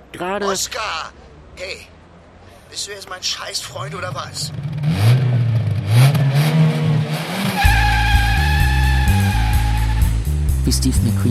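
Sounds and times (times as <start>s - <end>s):
speech: 0.2s - 2.0s, 2.7s - 5.0s, 10.6s - 11.2s
car engine revving while driving fast: 3.6s - 11.2s.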